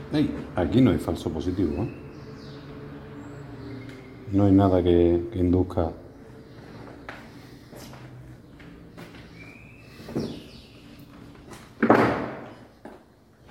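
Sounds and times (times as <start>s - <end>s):
speech: 0.1s - 2.0s, 4.3s - 6.0s
door closing with dull knock and sharp bang: 11.8s - 12.6s.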